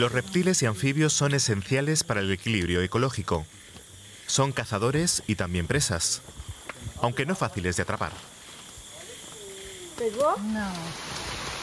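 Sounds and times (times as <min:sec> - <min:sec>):
speech: 0:00.0 - 0:03.6, 0:04.3 - 0:08.3, 0:10.0 - 0:11.4
heavy rain pouring down: 0:09.6 - 0:11.6.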